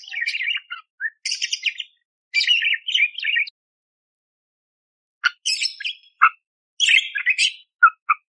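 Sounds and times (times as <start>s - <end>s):
budgerigar chattering in buzzy scratchy bursts: 0.0s - 3.4s, 5.2s - 8.2s.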